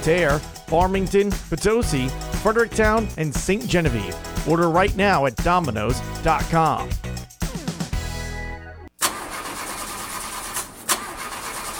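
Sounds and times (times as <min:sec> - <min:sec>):
speech: 0:00.0 - 0:07.1
car engine cranking: 0:09.0 - 0:11.7.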